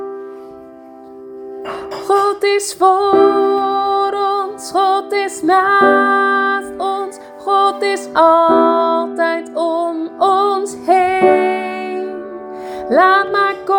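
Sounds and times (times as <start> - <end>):
low mezzo and alto voices singing a chorus lower part: 2.0 - 13.7.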